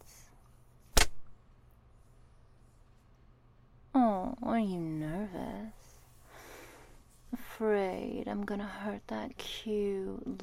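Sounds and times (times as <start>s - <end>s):
leather slapping against thighs: 0.9s - 1.3s
speech: 4.6s - 5.8s, 7.6s - 10.4s.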